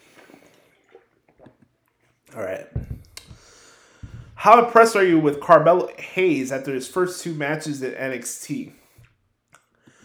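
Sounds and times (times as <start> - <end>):
speech: 2.3 - 2.9, 4.4 - 8.8
person swallowing water: 2.6 - 4.5.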